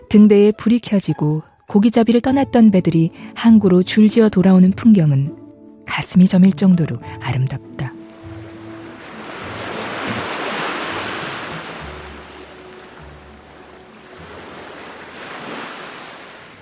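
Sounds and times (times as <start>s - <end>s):
speech: 0.1s - 7.9s
rough winter sea waves surging and crashing: 7.9s - 16.6s.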